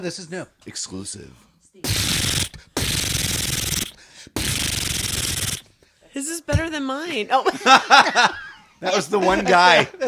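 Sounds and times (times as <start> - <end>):
speech: 0.0 - 2.6, 6.2 - 10.0
voice imitating machine gun fire: 1.8 - 5.6
laughter: 7.4 - 10.0.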